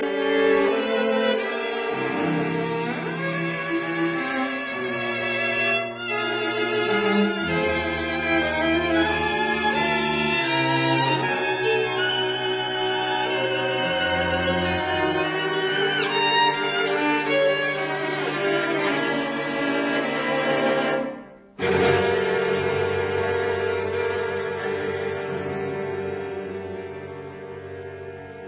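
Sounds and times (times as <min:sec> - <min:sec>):
string quartet playing a grave and scherzo: 0:00.0 - 0:28.4.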